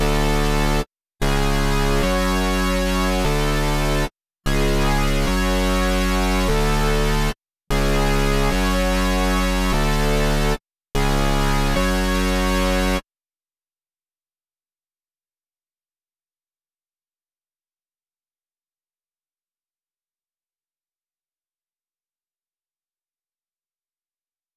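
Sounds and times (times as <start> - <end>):
148 BPM F# minor bass stem loop: 0.0 - 13.0.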